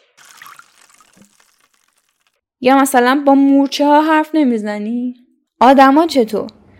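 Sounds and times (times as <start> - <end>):
water pouring while watering potted plants: 0.0 - 2.4
speech: 2.6 - 6.6.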